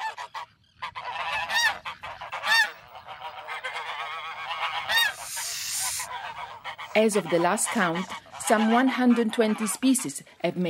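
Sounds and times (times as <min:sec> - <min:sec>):
flock of geese honking on sand-and-grass islands: 0:00.0 - 0:10.0
speech: 0:07.0 - 0:10.6.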